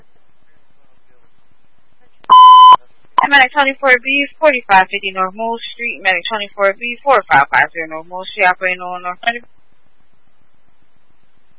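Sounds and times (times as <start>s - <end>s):
radio dispatch alert buzz tone: 2.3s - 3.4s
speech: 3.2s - 9.6s.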